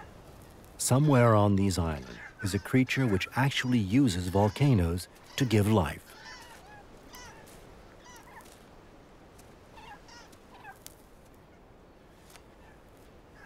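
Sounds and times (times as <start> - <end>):
megapode calling on a volcanic island: 0.0 - 8.6, 9.7 - 10.8
speech: 0.8 - 6.2.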